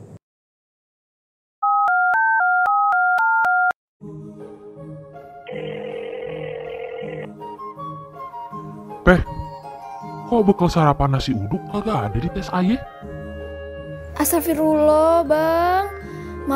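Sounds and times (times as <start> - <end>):
telephone keypad tones dialing a number: 1.6 - 3.7
music: 4.0 - 16.5
speech: 9.1 - 9.4, 10.3 - 13.0, 14.2 - 16.5.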